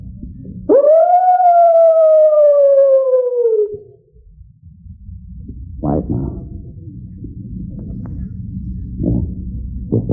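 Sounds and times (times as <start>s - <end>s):
low rumble: 0.0s - 10.1s
person imitating a coyote howl call: 0.7s - 4.0s.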